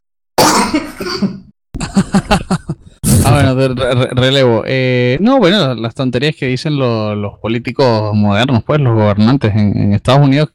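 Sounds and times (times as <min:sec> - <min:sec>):
person with a bad cough coughing hard: 0:00.4 - 0:03.3
laughter: 0:01.8 - 0:04.2
speech: 0:02.2 - 0:02.4, 0:03.6 - 0:10.5.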